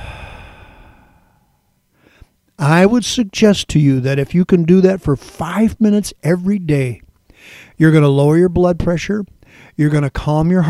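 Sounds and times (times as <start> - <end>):
slow breath out during a guided relaxation exercise: 0.0 - 2.4
speech: 2.6 - 10.6.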